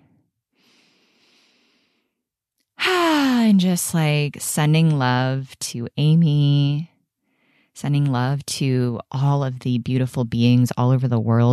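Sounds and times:
deep breath in: 0:00.5 - 0:02.2, 0:07.2 - 0:07.8
speech: 0:03.6 - 0:06.9, 0:07.8 - 0:11.5.

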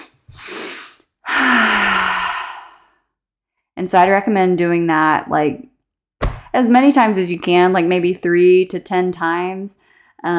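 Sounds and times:
audible mouth breaths taken as a relaxing breathing exercise: 0:00.0 - 0:02.9
speech: 0:03.8 - 0:05.7, 0:06.5 - 0:10.3.

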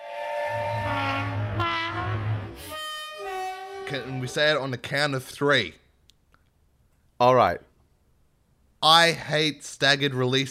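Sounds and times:
train horn blaring in steady chords: 0:00.0 - 0:04.8
low continuous rolling rumble of a passing train: 0:00.2 - 0:04.2
speech: 0:03.9 - 0:05.8, 0:07.2 - 0:07.7, 0:08.8 - 0:10.4.

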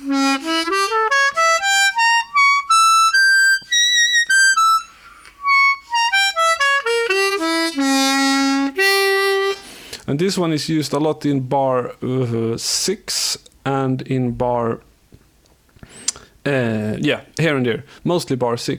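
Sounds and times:
C-sharp diminished arpeggio on a diatonic harmonica in jazz-blues style: 0:00.0 - 0:10.0
speech: 0:10.1 - 0:14.9, 0:16.4 - 0:18.7.

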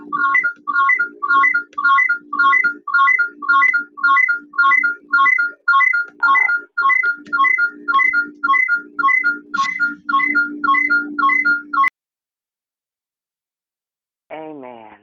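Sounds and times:
phone ringtone melody during a group call: 0:00.0 - 0:12.0.

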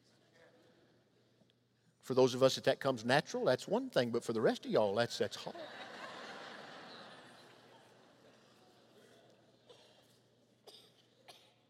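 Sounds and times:
speech: 0:02.1 - 0:05.8
laughter: 0:05.4 - 0:08.8
person coughing: 0:09.7 - 0:11.6.

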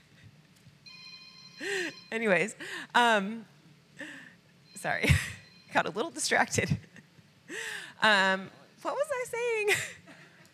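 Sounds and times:
low hum: 0:00.0 - 0:10.5
phone electronic ringtone: 0:00.9 - 0:02.4, 0:04.7 - 0:06.0
speech: 0:01.6 - 0:03.5, 0:04.8 - 0:06.8, 0:07.5 - 0:10.0.

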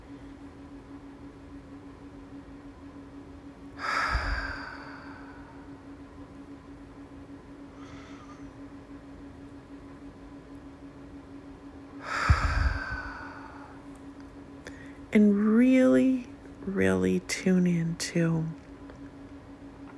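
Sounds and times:
quiet steady low hum: 0:00.0 - 0:19.9
full deep breaths: 0:03.8 - 0:05.8, 0:07.7 - 0:08.5, 0:12.0 - 0:13.9, 0:14.6 - 0:15.1
speech: 0:15.2 - 0:15.4.

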